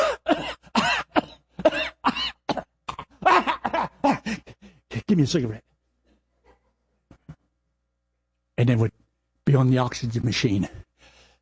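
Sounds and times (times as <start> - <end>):
person coughing: 0.0 - 4.4
speech: 5.1 - 5.7, 8.6 - 8.9, 9.5 - 10.8.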